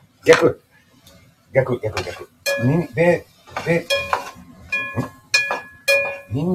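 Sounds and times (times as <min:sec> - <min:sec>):
garlic and bacon sizzling faintly in a pan: 0:00.0 - 0:06.5
speech: 0:00.2 - 0:00.6, 0:01.5 - 0:04.0, 0:05.0 - 0:05.2, 0:06.3 - 0:06.5
stirring strokes clinking and scraping in a pan: 0:01.9 - 0:06.4.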